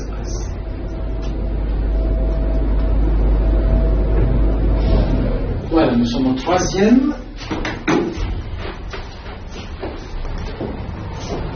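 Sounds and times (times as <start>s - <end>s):
air-conditioning compressors running on the third floor of a building: 0.0s - 11.5s
speech: 6.0s - 7.7s
uneven mechanical knocks and thuds: 7.5s - 11.5s.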